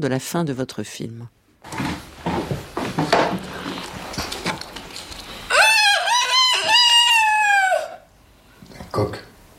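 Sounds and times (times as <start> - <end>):
speech: 0.0 - 2.0
indistinct sounds and movement: 1.6 - 5.5
rooster crowing: 5.5 - 8.1.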